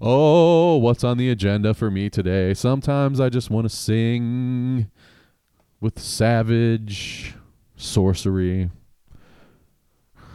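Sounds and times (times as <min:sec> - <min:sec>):
speech: 0:00.0 - 0:05.1, 0:05.8 - 0:08.8
heavy breathing through the nose: 0:04.9 - 0:05.4, 0:09.1 - 0:10.3.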